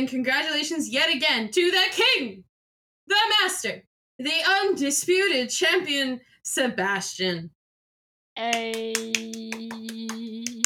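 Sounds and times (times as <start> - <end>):
speech: 0.0 - 2.5, 3.1 - 7.6, 8.4 - 9.6
steady evenly spaced hand claps: 8.4 - 10.6.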